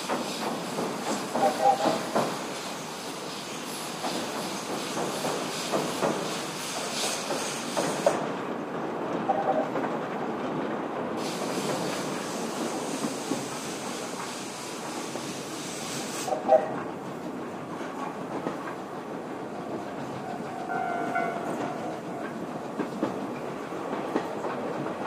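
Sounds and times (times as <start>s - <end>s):
bright hiss: 0.0s - 8.2s, 11.2s - 16.4s
steam train crossing the Kuma River bridge: 0.0s - 25.0s.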